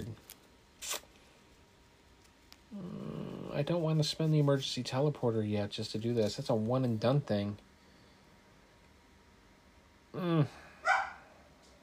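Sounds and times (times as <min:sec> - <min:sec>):
speech: 0:03.6 - 0:07.7
dog barking: 0:10.8 - 0:11.3.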